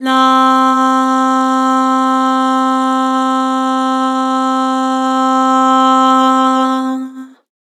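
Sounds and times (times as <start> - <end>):
vocals singing lah: 0.0 - 7.5.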